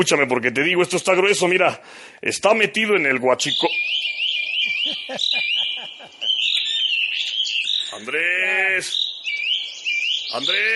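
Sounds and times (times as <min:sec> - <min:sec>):
speech: 0:00.0 - 0:04.0, 0:08.0 - 0:09.0, 0:10.3 - 0:10.7
small birds chirping and twittering while being fed at a ranch: 0:00.0 - 0:10.7
low rhythmic chirps: 0:01.8 - 0:10.7
laughter: 0:04.5 - 0:07.0.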